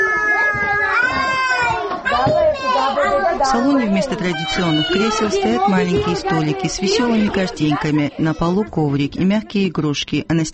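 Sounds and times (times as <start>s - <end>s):
crowd of children shrieking and squealing happily while playing: 0.0s - 7.3s
speech: 2.3s - 10.5s.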